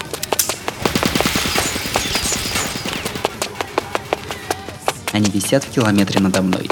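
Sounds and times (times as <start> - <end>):
rapid machine gun fire in sustained bursts: 0.0 - 4.4
speech: 5.2 - 6.7.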